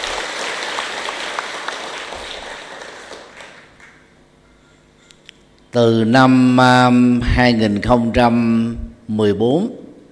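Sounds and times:
large crowd applauding: 0.0s - 4.0s
speech: 5.7s - 9.8s.

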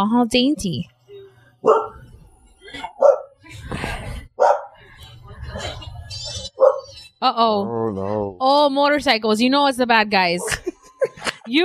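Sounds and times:
speech: 0.0s - 0.9s, 1.6s - 1.8s, 7.2s - 10.6s
dogs barking: 1.6s - 2.1s, 2.8s - 3.4s, 4.3s - 4.8s, 5.4s - 7.0s
laughter: 10.4s - 11.6s.

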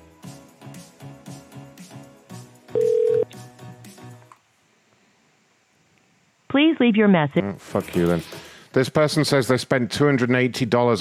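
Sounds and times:
rhythmic music: 0.0s - 4.3s
ringing tone from an outgoing phone call: 2.8s - 3.3s
speech: 6.6s - 10.9s.

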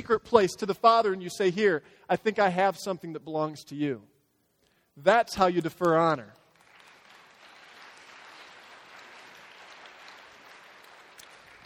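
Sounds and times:
speech: 0.0s - 4.1s, 5.0s - 6.4s
crowd clapping: 5.8s - 11.6s.

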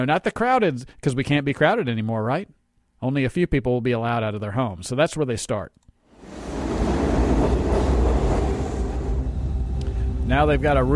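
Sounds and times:
speech: 0.0s - 6.5s, 10.3s - 10.9s
subway train car rumbling along the rails: 6.2s - 10.9s.

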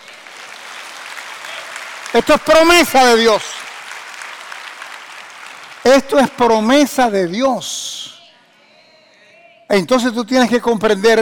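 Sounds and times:
audience applauding: 0.0s - 7.2s
speech: 2.1s - 3.5s, 5.8s - 8.2s, 9.7s - 11.1s.

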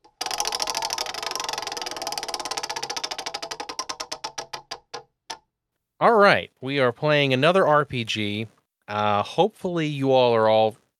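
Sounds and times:
spinning prize wheel ticking: 0.0s - 5.1s
speech: 6.0s - 10.8s.

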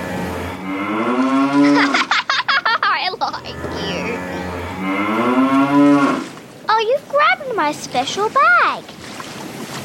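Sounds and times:
deep cow-like moos from a large whiskered sea animal: 0.0s - 2.0s, 3.4s - 6.3s
choppy giggly burst: 1.4s - 4.6s
speech: 7.7s - 8.8s.

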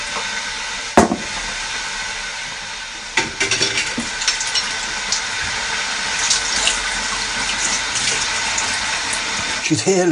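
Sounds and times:
running water in a sink: 0.0s - 10.1s
dishes being washed up in a sink: 3.2s - 4.8s.

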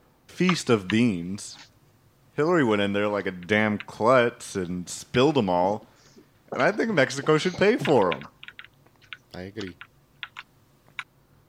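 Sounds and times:
speech: 0.4s - 1.7s, 2.4s - 5.9s, 6.5s - 8.3s, 9.3s - 9.9s
quiet crisp keystrokes on a computer keyboard: 7.8s - 11.1s.

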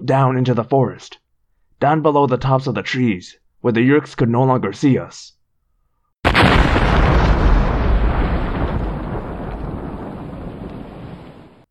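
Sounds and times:
speech: 0.1s - 1.2s, 1.8s - 5.4s
explosion of a crashing ship hitting the ground: 6.2s - 11.6s.

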